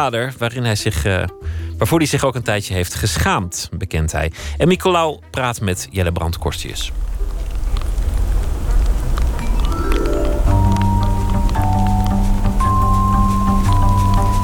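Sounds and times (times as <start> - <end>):
speech: 0.0 - 7.3
heavy rain pouring down: 6.4 - 14.4.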